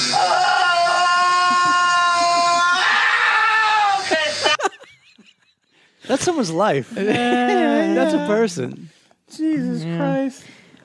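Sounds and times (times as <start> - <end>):
person screaming in pain: 0.1 - 4.4
laughter: 4.0 - 8.4
speech: 6.1 - 10.8.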